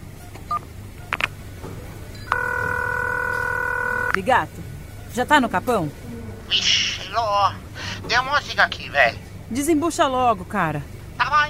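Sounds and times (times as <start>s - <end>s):
telephone keypad beeps while dialling: 2.2s - 4.2s
telephone call ringing tone: 2.3s - 4.2s
speech: 4.2s - 11.4s.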